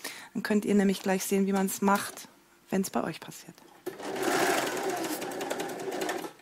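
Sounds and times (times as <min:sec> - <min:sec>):
speech: 0:00.4 - 0:03.7
sewing machine running: 0:03.8 - 0:06.4.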